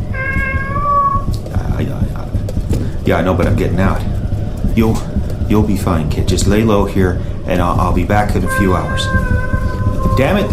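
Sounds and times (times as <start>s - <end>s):
cat meowing: 0.0s - 1.3s, 8.2s - 10.5s
low rumbling background: 0.0s - 10.5s
indistinct voices: 1.4s - 10.5s
speech: 3.1s - 4.1s, 4.8s - 9.5s, 10.1s - 10.5s.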